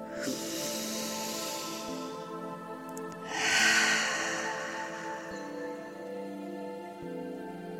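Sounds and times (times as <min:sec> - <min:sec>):
slow deep breath: 0:00.0 - 0:02.5, 0:03.1 - 0:06.6
soft sustained musical tones: 0:00.0 - 0:07.7.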